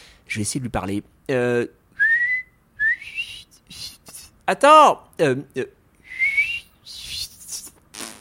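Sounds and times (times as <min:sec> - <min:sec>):
speech: 0:00.4 - 0:01.8, 0:04.5 - 0:05.8
short breathy whistle attempts with chapped lips: 0:02.0 - 0:04.0, 0:06.0 - 0:07.7.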